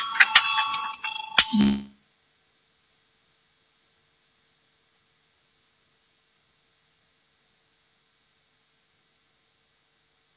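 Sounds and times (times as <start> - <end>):
electric voting bell ringing in the Latvian parliament before a vote: 0.0 - 1.6.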